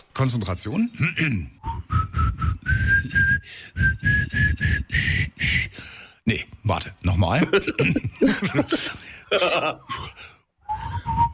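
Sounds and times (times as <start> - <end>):
speech: 0.2 - 1.9, 6.3 - 10.3
person whistling a lively pop song melody: 1.6 - 5.6, 10.6 - 11.3
laughter: 7.3 - 9.9.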